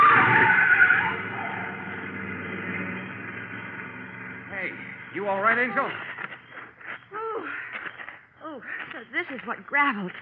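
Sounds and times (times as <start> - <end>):
car engine roaring with loud rumble: 0.0 - 6.6
sharp screech of skidding car tires: 0.0 - 7.1
speech: 5.2 - 6.1, 8.6 - 10.1.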